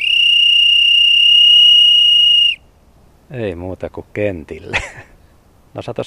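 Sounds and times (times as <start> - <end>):
shrill trilling handmade willow whistle: 0.0 - 2.7
speech: 3.3 - 5.1, 5.7 - 6.0.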